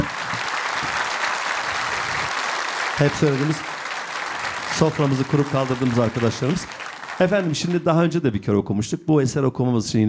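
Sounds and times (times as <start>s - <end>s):
concert audience applause for an orchestra: 0.0s - 8.0s
speech: 3.0s - 3.8s, 4.8s - 10.0s.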